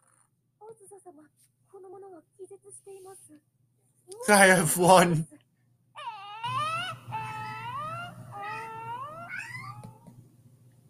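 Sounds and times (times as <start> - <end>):
speech: 0.7 - 5.4
cat meowing with drawn-out wavering meows: 6.0 - 10.0.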